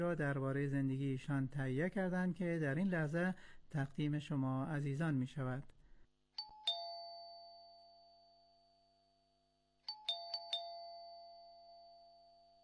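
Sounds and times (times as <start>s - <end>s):
speech: 0.0s - 5.8s
doorbell ding-dong at a house gate: 6.4s - 8.6s, 9.9s - 12.6s.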